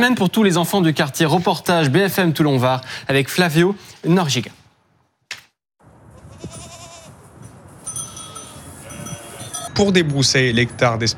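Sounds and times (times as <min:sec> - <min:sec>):
speech: 0:00.0 - 0:04.6, 0:09.8 - 0:11.1
sheep and goats bleating outdoors at a housing estate in Toulon France: 0:06.2 - 0:07.2, 0:08.2 - 0:09.7.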